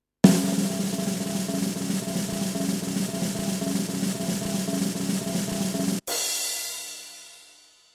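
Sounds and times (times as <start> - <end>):
classic snare drum roll: 0.2 - 6.2
cymbal hit: 0.2 - 7.5.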